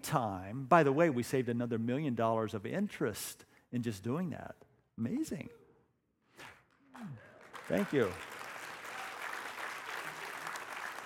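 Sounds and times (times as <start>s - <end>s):
speech: 0.0s - 5.6s, 6.4s - 8.4s
room full of people applauding: 7.0s - 11.0s.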